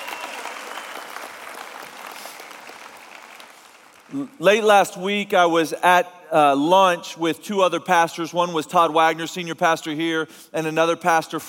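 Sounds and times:
large audience applauding a worship team: 0.0s - 4.4s
speech: 4.1s - 11.4s.

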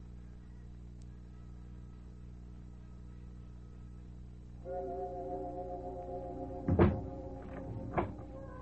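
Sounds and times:
steady low sustained musical drone: 0.2s - 8.5s
door swinging shut with a solid thunk: 6.7s - 8.3s.

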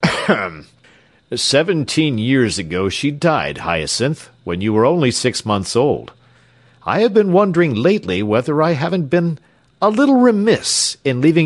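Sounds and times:
man giving throaty coughs: 0.0s - 0.8s
speech: 0.3s - 6.2s, 6.8s - 11.4s
soft breathy exhale: 0.8s - 1.3s, 6.2s - 6.8s.

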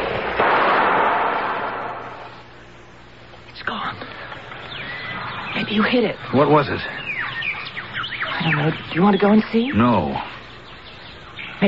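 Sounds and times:
pistol gunshot: 0.0s - 2.4s
speech: 5.7s - 7.0s, 8.4s - 10.4s.

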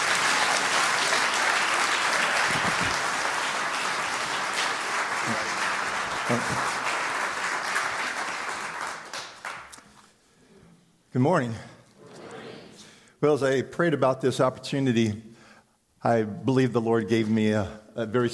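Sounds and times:
large crowd applauding: 0.0s - 9.8s
speech: 6.3s - 6.7s, 11.1s - 11.7s, 13.2s - 15.3s, 16.0s - 18.3s.

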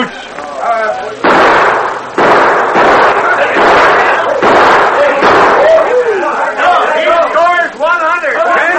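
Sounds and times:
people talking: 0.0s - 1.3s, 3.0s - 8.7s
gunshots fired in a shooting contest: 1.2s - 6.2s.

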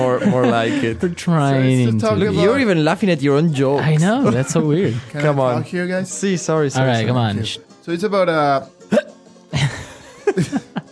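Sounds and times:
laughter: 0.0s - 2.7s, 4.0s - 5.5s, 8.9s - 10.8s
speech: 0.0s - 9.1s
hiccups: 8.9s - 9.2s.

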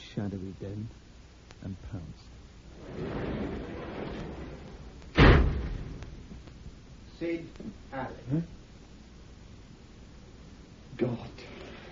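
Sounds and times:
speech: 0.2s - 3.5s, 7.2s - 8.6s, 11.0s - 11.5s
roll-up garage door rolling rumble: 2.6s - 7.0s
roll-up garage door slamming shut: 2.7s - 6.2s.

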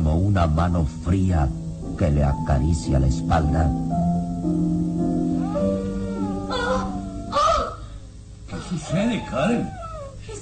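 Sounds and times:
speech: 0.2s - 4.9s, 8.7s - 10.3s
animal howl with wavering sliding pitch: 5.3s - 10.2s.

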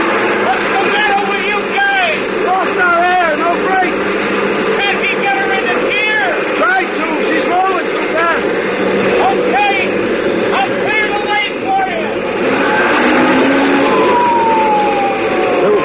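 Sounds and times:
loud dense rumble of traffic: 0.0s - 15.8s
police car sirens wailing and yelping: 0.0s - 15.8s.

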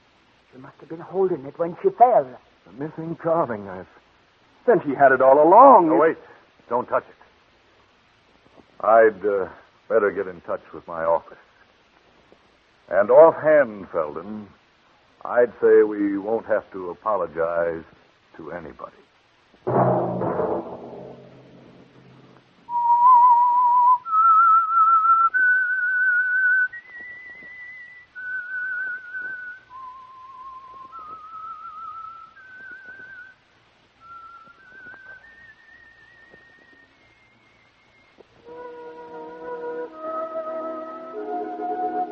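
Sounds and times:
speech: 0.6s - 4.0s, 4.7s - 7.2s, 8.8s - 11.5s, 12.9s - 14.6s, 15.2s - 19.0s
soft orchestral chords: 19.7s - 22.4s
lone clear whistled theme tune melody: 22.7s - 33.4s, 34.0s - 42.1s.

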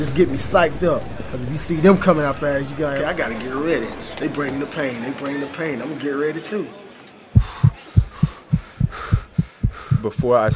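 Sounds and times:
speech: 0.0s - 6.8s, 10.0s - 10.5s
runner's fast heartbeat from nervousness: 7.4s - 10.5s.

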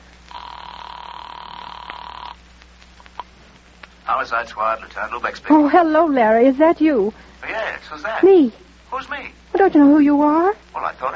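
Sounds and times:
telephone line ringing: 0.3s - 2.4s
faint clicks: 1.8s - 4.0s
speech: 4.1s - 11.1s.

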